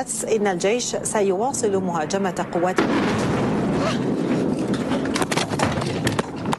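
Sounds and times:
woman speaking during a live television news report: 0.0 - 2.9
bomb exploding in Damascus during an Israeli airstrike on Syria: 1.5 - 6.5.

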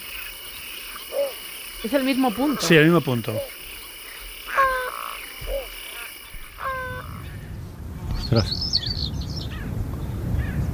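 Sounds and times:
steppe dry-field land birds calling in the Doñana marsh in winter: 0.0 - 9.7
speech: 1.8 - 3.6, 8.4 - 8.8
low rumble of wind in the Doñana marsh in winter: 6.3 - 10.7.

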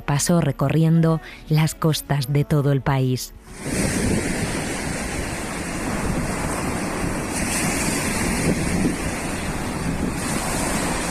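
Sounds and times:
speech: 0.1 - 4.0
gusts of wind buffeting the microphone: 3.5 - 11.0
powerful surf pounding against a stone breakwater: 3.5 - 11.0.

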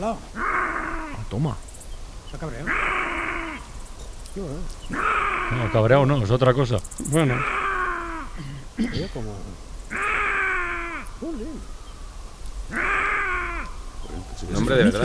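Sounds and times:
speech: 0.0 - 0.5, 1.3 - 1.7, 2.3 - 3.0, 4.4 - 7.6, 8.4 - 9.7, 11.2 - 11.8, 12.7 - 12.9, 14.3 - 15.0
Iberian lynx in heat yowling mating call: 0.3 - 1.3, 2.6 - 3.8, 4.9 - 6.1, 7.2 - 9.0, 9.9 - 11.8, 12.7 - 15.0.

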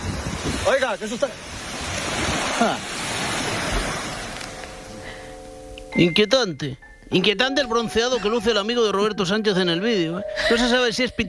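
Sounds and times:
ocean waves rushing onto a beach: 0.0 - 5.5
speech: 0.7 - 1.6, 2.6 - 3.0, 6.0 - 11.2.

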